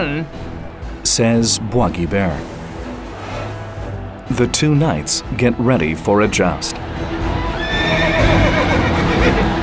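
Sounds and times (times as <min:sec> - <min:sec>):
speech: 0:00.0 - 0:00.4, 0:01.0 - 0:02.6, 0:04.3 - 0:07.2
horse whinnying with a high wavering neigh: 0:07.6 - 0:09.5.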